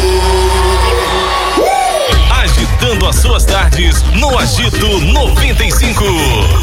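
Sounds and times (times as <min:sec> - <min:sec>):
crowd giving short shouts and whoops: 0:00.0 - 0:05.0
speech: 0:03.6 - 0:06.6.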